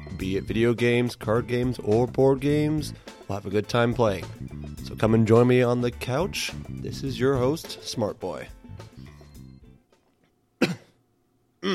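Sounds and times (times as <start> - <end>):
speech: 0.1 - 8.6
person clearing throat: 10.6 - 11.0
person coughing: 10.6 - 11.0.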